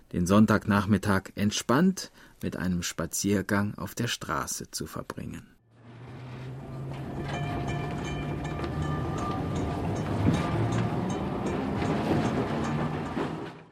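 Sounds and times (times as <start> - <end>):
speech: 0.1 - 5.6
tram rumbling along its rails heard on board: 5.7 - 13.6.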